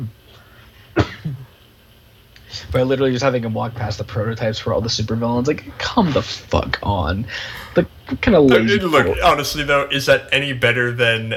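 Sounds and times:
person coughing: 0:01.0 - 0:01.4
speech: 0:02.7 - 0:11.3.

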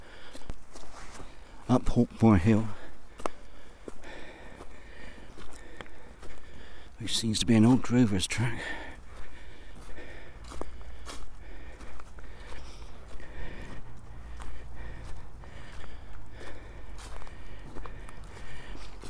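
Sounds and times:
footsteps climbing steeply uphill through woodland above a drover's track: 0:00.0 - 0:19.0
heavy breathing while climbing steeply uphill through woodland: 0:00.0 - 0:19.0
speech: 0:01.7 - 0:02.8, 0:07.1 - 0:08.8.

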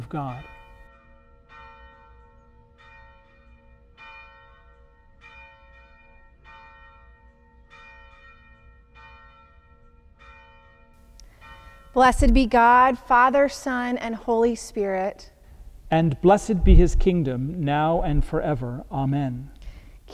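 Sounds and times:
church bells ringing in a repeating peal: 0:00.0 - 0:14.8
speech: 0:00.1 - 0:00.5, 0:11.9 - 0:15.3, 0:15.9 - 0:19.5.

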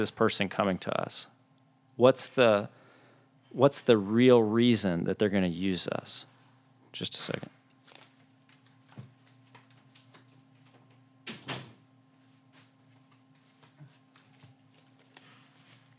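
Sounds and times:
speech: 0:00.0 - 0:01.4, 0:02.0 - 0:02.8, 0:03.5 - 0:06.3, 0:06.9 - 0:07.6
door shut with a solid thud and rattle: 0:11.3 - 0:11.8.

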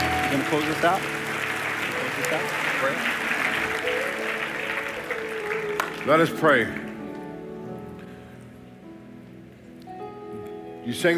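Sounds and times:
large audience clapping hands: 0:00.0 - 0:07.4
speech: 0:00.3 - 0:01.2, 0:02.2 - 0:03.4, 0:06.0 - 0:06.8, 0:10.9 - 0:11.1.

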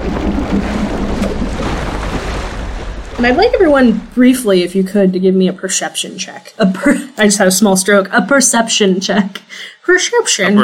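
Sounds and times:
stormy ocean waves thrashing in the wind: 0:00.0 - 0:05.2
speech: 0:03.2 - 0:10.6.

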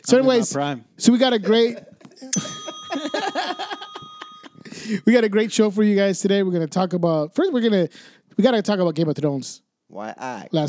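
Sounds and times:
speech: 0:00.1 - 0:02.5, 0:04.9 - 0:10.6
hand bell ringing: 0:02.3 - 0:05.0.

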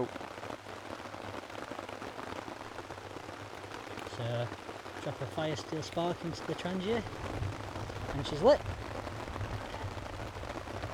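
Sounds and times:
speech: 0:00.0 - 0:00.3, 0:04.2 - 0:07.4, 0:08.2 - 0:08.8
heavy rain drumming on a tarp overhead: 0:00.0 - 0:10.9.

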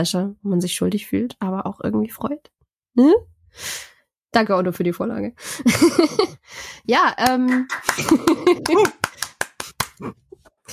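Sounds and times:
speech: 0:00.0 - 0:09.0, 0:10.0 - 0:10.7
laughter: 0:05.6 - 0:06.4, 0:07.7 - 0:10.1
sharp hand claps: 0:07.2 - 0:10.1
voice murmuring: 0:08.0 - 0:09.0.

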